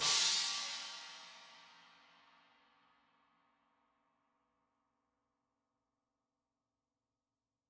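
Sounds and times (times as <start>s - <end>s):
china cymbal: 0.0s - 2.0s.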